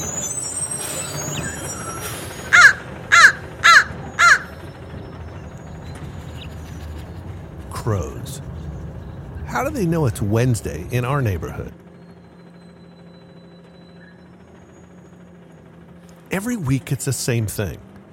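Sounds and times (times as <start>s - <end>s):
truck air brake hissing: 0.0s - 2.6s
low rumble of traffic: 0.0s - 18.1s
crows cawing from trees and telephone poles in a neighborhood: 2.5s - 5.4s
speech: 7.9s - 8.5s, 9.6s - 11.8s, 16.4s - 17.9s.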